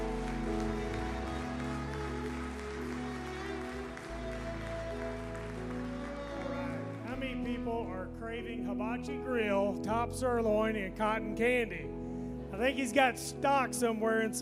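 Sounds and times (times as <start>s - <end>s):
audience clapping in steady continuous applause: 0.0s - 7.4s
sustained musical tones: 0.0s - 9.4s
speech: 7.6s - 11.9s, 12.6s - 14.4s.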